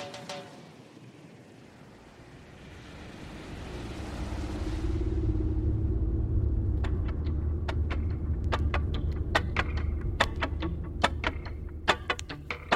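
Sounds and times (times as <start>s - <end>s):
car cruising along a highway over a bridge in the Keys: 2.9s - 11.9s
sharp ticking clicks: 6.8s - 12.7s.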